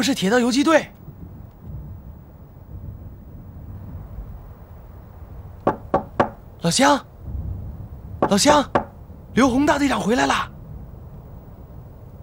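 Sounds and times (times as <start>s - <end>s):
speech: 0.0s - 1.0s, 6.6s - 7.1s, 8.3s - 8.8s, 9.4s - 10.5s
low rumbling background: 0.0s - 12.2s
knocking on a villager's wooden door: 5.7s - 6.4s, 8.2s - 8.9s.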